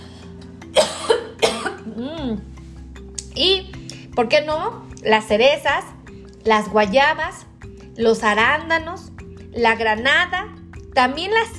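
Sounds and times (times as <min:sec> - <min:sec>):
person coughing after drinking an herbal tea: 0:00.7 - 0:02.4
speech: 0:02.3 - 0:02.5, 0:04.2 - 0:07.4, 0:08.0 - 0:11.5.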